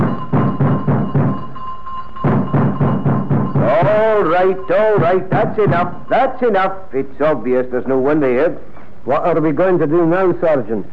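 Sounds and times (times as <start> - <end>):
two policemen thumping heavily on the front door of a house: 0.0 - 1.4, 2.3 - 4.0
thin steady ringing tone from a doorbell: 0.0 - 5.2
speech: 3.9 - 10.9.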